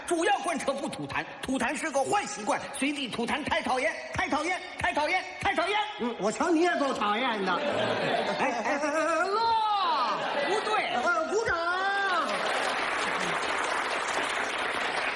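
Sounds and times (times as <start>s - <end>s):
speech: 0.1s - 9.4s
live audience voices and laughter: 7.2s - 13.8s
large crowd applauding: 11.7s - 15.1s.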